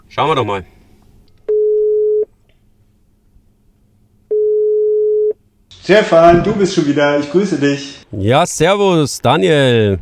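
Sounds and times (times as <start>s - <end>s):
speech: 0.1s - 0.7s, 5.9s - 9.9s
telephone ringback tones while placing a call: 1.5s - 2.3s, 4.3s - 5.4s.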